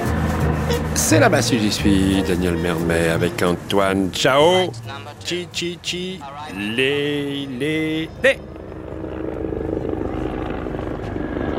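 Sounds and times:
helicopter engine roar: 0:00.0 - 0:11.5
speech: 0:00.7 - 0:08.5
rotors of helicopters circling and landing: 0:08.2 - 0:11.5.

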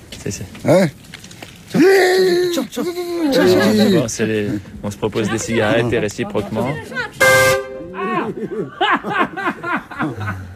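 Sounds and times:
speech: 0:00.2 - 0:01.1, 0:01.9 - 0:07.2, 0:08.3 - 0:10.5
laughter: 0:01.8 - 0:04.6, 0:07.8 - 0:10.5
car horn blast in a small alley in Iran: 0:07.2 - 0:08.0.

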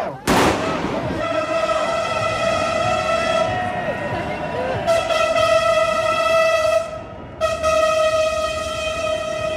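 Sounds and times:
street protest crowd murmuring in Paris: 0:00.0 - 0:05.6
metro train horn blaring: 0:01.0 - 0:09.5.

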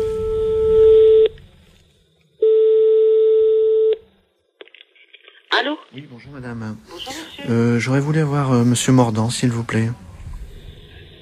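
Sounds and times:
telephone line tone while a call is transferred: 0:00.0 - 0:01.3, 0:02.4 - 0:04.0
speech: 0:06.0 - 0:10.1.

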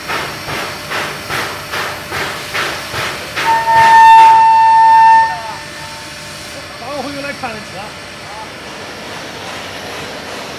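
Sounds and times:
steam locomotives chuffing in Pingdingshan, Henan, China: 0:00.0 - 0:10.5
steam locomotive whistle in Pingdingshan, Henan, China: 0:03.4 - 0:06.2.

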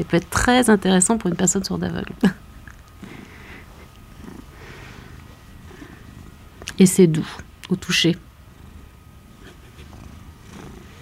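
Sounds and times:
speech: 0:00.0 - 0:02.4, 0:06.8 - 0:08.3
purr box toy imitating a cat purring: 0:03.0 - 0:06.8, 0:08.2 - 0:11.0.

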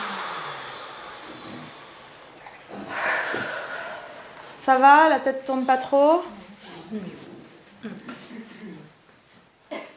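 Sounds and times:
deep breath in and out during a guided breathing exercise: 0:02.7 - 0:04.6
speech: 0:04.7 - 0:07.3.

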